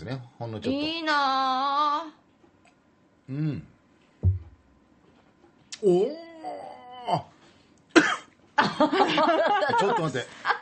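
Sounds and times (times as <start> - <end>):
speech: 0.0 - 2.2, 3.3 - 3.7, 5.8 - 7.3, 8.6 - 10.6
person coughing after sipping wine: 7.9 - 8.3
laughter: 8.6 - 10.6.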